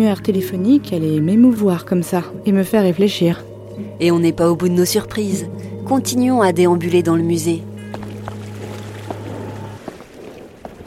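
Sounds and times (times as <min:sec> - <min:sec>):
speech: 0:00.0 - 0:08.0
water lapping and flowing: 0:07.7 - 0:10.8.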